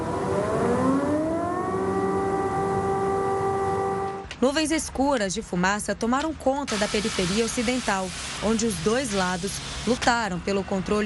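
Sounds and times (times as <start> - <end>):
air raid warning siren wailing: 0.0 - 4.3
speech: 4.4 - 11.0.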